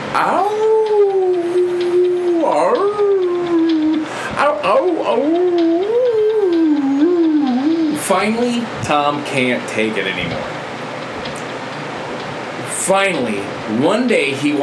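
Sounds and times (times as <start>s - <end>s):
dog howling in long wavering tones: 0.1s - 8.1s
speech: 0.2s - 0.6s, 8.1s - 10.6s, 12.9s - 14.6s.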